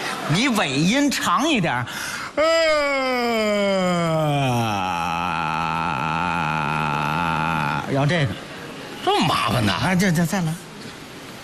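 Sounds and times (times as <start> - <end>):
speech: 0.3 - 5.4, 7.9 - 8.4, 9.0 - 10.6
loud exaggerated yawn with long drawn-out ending: 2.2 - 7.9.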